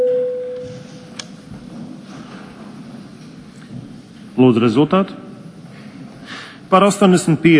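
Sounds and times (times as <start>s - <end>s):
parliamentary voting bell electronic signal tone: 0.0s - 0.8s
quiet room hum: 0.0s - 7.5s
speech: 4.4s - 5.2s, 6.7s - 7.5s.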